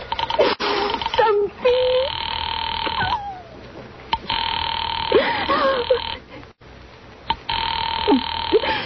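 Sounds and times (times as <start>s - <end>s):
telephone ringing on the line while caller waits for operator: 0.1s - 3.1s, 4.2s - 6.3s, 7.3s - 8.8s.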